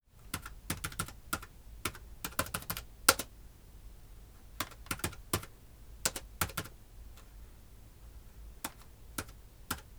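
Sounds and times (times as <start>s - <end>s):
computer keyboard typing at mid distance: 0.3s - 3.3s, 4.6s - 6.8s, 8.6s - 9.9s.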